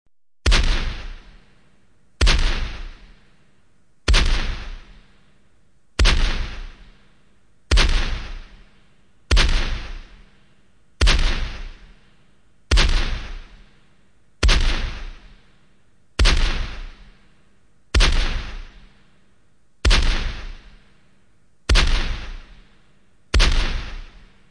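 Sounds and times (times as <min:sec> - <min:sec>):
rifle shots fired as a salute: 0:00.4 - 0:01.4, 0:02.2 - 0:03.2, 0:04.1 - 0:05.0, 0:06.0 - 0:07.0, 0:07.7 - 0:08.7, 0:09.3 - 0:10.3, 0:11.0 - 0:12.0, 0:12.7 - 0:13.6, 0:14.4 - 0:15.4, 0:16.2 - 0:17.2, 0:17.9 - 0:18.9, 0:19.8 - 0:20.8, 0:21.7 - 0:22.7, 0:23.3 - 0:24.4.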